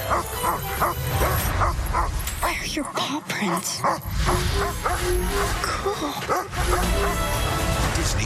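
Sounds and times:
dog barking: 0:00.1 - 0:02.6, 0:03.8 - 0:05.6, 0:06.3 - 0:07.4
speech: 0:02.8 - 0:08.2.

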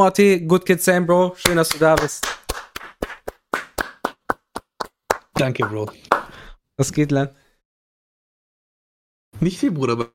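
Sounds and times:
speech: 0:00.0 - 0:02.4, 0:05.4 - 0:06.2, 0:06.8 - 0:07.4, 0:09.4 - 0:10.1
hands clapping: 0:01.4 - 0:06.4.

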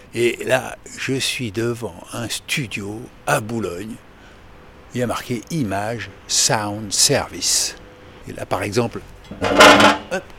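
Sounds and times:
speech: 0:00.1 - 0:04.1, 0:04.9 - 0:10.3
metal chair scraping across a hard floor: 0:09.3 - 0:10.2.

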